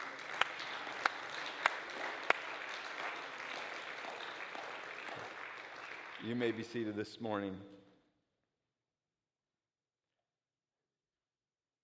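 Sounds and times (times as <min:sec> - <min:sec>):
roomful of people applauding: 0:00.0 - 0:07.5
speech: 0:06.2 - 0:07.8.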